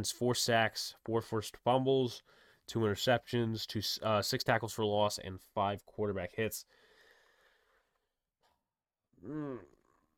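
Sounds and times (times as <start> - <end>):
speech: 0.0 - 6.8, 9.2 - 9.8
loud drawn-out voiced yawn: 9.2 - 9.9.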